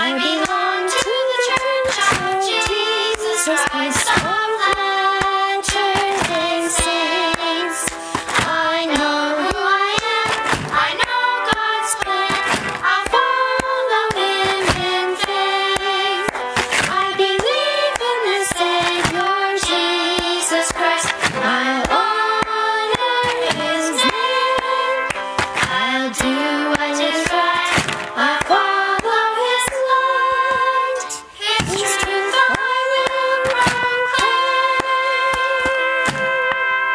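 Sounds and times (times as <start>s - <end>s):
melodic singing voice: 0.0s - 36.9s
rhythmic hand claps: 0.0s - 36.9s
foot stomps: 1.5s - 2.5s, 3.6s - 24.2s, 25.1s - 26.2s, 27.2s - 29.8s, 31.4s - 32.6s, 33.4s - 36.6s.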